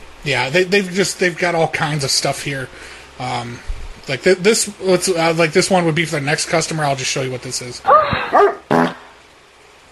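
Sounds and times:
speech: 0.2 - 8.6
dog barking: 7.9 - 8.7.

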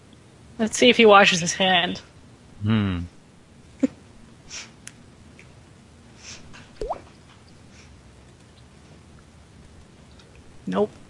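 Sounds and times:
speech: 0.6 - 3.1, 10.7 - 11.0
water dripping: 6.8 - 7.1.

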